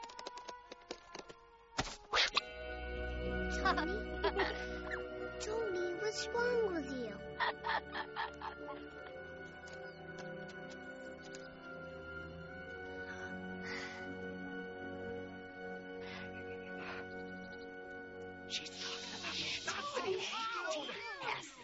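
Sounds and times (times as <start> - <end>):
sustained tonal music-like sounds: 2.0 - 20.1
laughter: 3.5 - 5.0, 7.3 - 9.7, 18.7 - 21.6
speech: 3.6 - 9.8.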